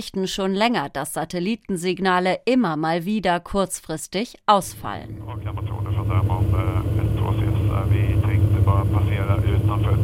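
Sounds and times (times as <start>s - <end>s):
speech: 0.0s - 6.9s
voices talking: 4.6s - 10.0s
small airplane engine droning in flight over the Baltic Sea: 5.1s - 10.0s.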